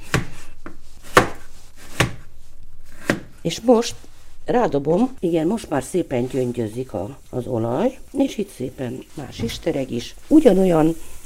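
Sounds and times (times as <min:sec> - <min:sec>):
knife slicing a vegetable into slices against a board: 0:00.0 - 0:02.3, 0:02.9 - 0:03.4
speech: 0:03.4 - 0:11.2.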